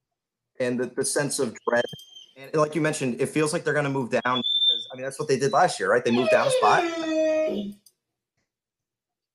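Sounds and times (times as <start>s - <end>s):
speech: 0.6s - 7.8s
dog howling: 6.0s - 7.7s.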